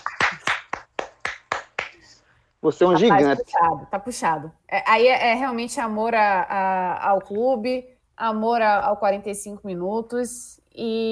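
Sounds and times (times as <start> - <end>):
single person clapping hands: 0.0 - 2.1
speech: 2.6 - 11.1.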